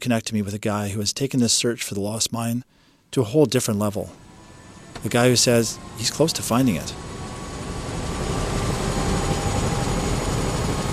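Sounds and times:
speech: 0.0 - 4.3, 5.0 - 7.2
helicopter flying overhead: 4.1 - 10.9.

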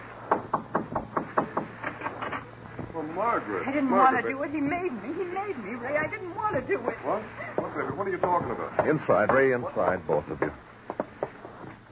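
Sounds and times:
sharp knocking on a door: 0.3 - 1.8, 5.9 - 6.8, 7.6 - 11.8
speech: 3.2 - 10.7.

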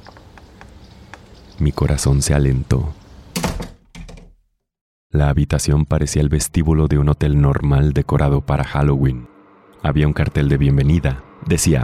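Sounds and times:
speech: 1.6 - 3.0, 5.2 - 11.8
house front door swinging heavier clunk: 3.4 - 4.3.

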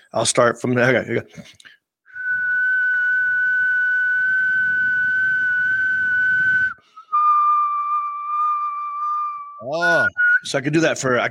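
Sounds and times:
speech: 0.1 - 1.8, 9.7 - 11.3
person whistling while inhaling and exhaling: 2.1 - 10.5.

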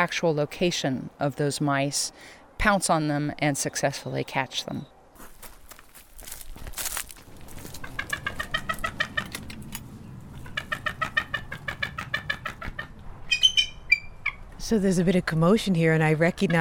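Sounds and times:
speech: 0.0 - 4.9, 14.7 - 16.5
female bald eagle chattering calls: 7.5 - 9.5, 10.3 - 14.5.

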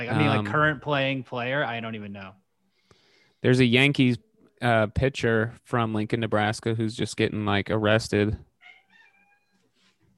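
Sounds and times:
speech: 0.0 - 2.4, 3.4 - 8.5
cat meowing to be let out: 8.6 - 9.7.

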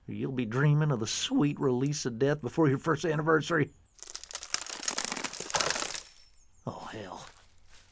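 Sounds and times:
speech: 0.1 - 4.1
leaves and twigs rustling as bushes are shaken: 4.0 - 7.9.

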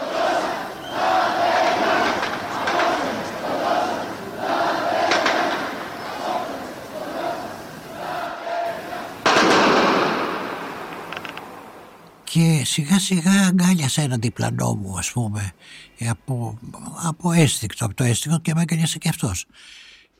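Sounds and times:
outdoor crowd roaring and shouting: 0.0 - 11.4
sharp bangs like gunshots: 5.1 - 5.8, 9.2 - 11.6
speech: 12.4 - 20.0.

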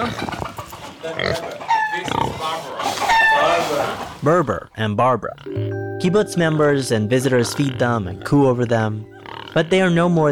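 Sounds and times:
pet pig squealing: 0.0 - 4.2, 6.3 - 10.3
pet pigs snorting and grunting: 0.0 - 5.7, 6.3 - 10.3
speech: 4.2 - 10.3.

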